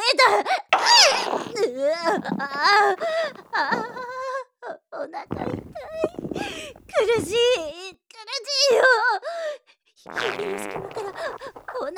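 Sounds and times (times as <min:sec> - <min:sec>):
speech: 0:00.2 - 0:00.9, 0:01.8 - 0:04.0, 0:05.0 - 0:11.9
fart from a person with an upset stomach in an elevator: 0:00.8 - 0:04.1, 0:05.3 - 0:07.7, 0:10.1 - 0:11.9.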